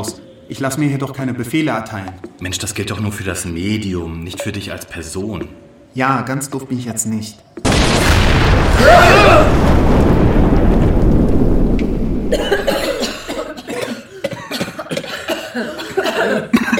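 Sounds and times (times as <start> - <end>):
speech: 0.0 - 10.0
deep booming rumble: 7.7 - 12.5
harsh coughing from too much smoke: 12.3 - 16.7.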